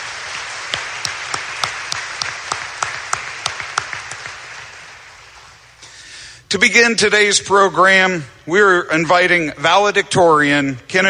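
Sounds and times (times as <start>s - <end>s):
audience applause: 0.0s - 5.6s
speech: 6.5s - 11.0s.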